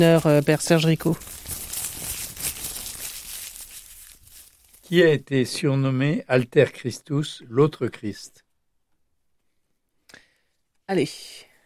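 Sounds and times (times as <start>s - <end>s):
speech: 0.0s - 1.4s, 4.9s - 8.4s, 10.9s - 11.5s
small paper slip crinkling as it is drawn by lot and unfolded: 0.0s - 5.0s.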